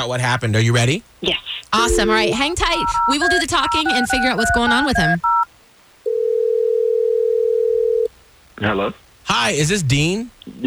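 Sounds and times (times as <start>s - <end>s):
speech: 0.0s - 5.4s, 8.6s - 10.6s
telephone ringback tone while placing a call: 1.9s - 5.4s, 6.1s - 8.1s.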